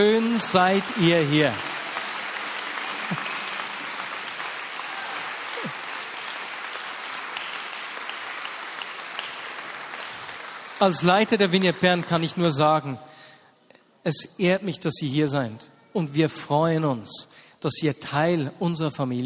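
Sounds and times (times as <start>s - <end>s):
speech: 0.0s - 1.7s, 10.8s - 13.1s, 14.0s - 19.2s
audience applause: 0.0s - 12.4s.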